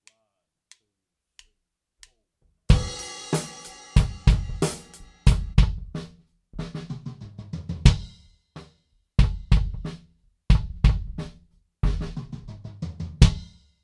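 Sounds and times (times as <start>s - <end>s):
gated kick drum: 2.7s - 6.9s, 7.8s - 8.2s, 9.2s - 9.9s, 10.5s - 12.3s, 13.2s - 13.5s.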